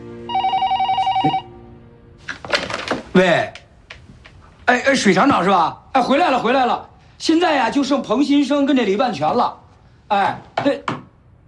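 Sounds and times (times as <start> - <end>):
telephone ringing with a loud rapid warbling trill: 0.3 - 1.7
speech: 1.2 - 1.4, 3.2 - 3.6, 4.7 - 11.0.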